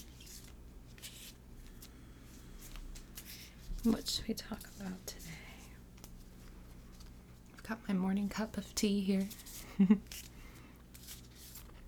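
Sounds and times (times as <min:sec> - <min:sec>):
deck of cards being shuffled: 0:00.0 - 0:04.9, 0:09.2 - 0:11.8
speech: 0:03.8 - 0:05.4, 0:07.7 - 0:10.2.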